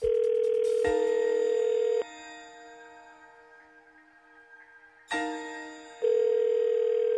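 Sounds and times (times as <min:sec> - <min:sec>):
telephone ringback tone while a call connects: 0:00.0 - 0:02.3, 0:06.0 - 0:07.1.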